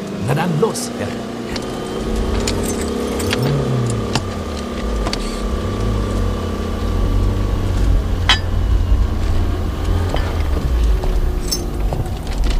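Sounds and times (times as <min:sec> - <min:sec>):
car engines revving and accelerating: 0:00.0 - 0:12.5
speech: 0:00.3 - 0:02.3
sharp metallic clinks: 0:01.5 - 0:06.2, 0:11.4 - 0:11.8.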